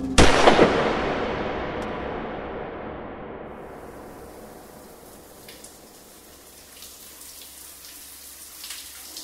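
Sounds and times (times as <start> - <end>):
loud gunshot with ringing echo: 0.1 - 5.6
soft steady hiss of a running shower: 4.3 - 9.2.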